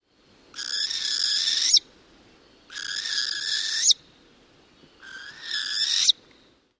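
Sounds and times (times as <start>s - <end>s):
Northern hawk owl giving harsh raspy screeching calls: 0.5s - 1.8s, 2.7s - 4.0s, 5.0s - 6.2s.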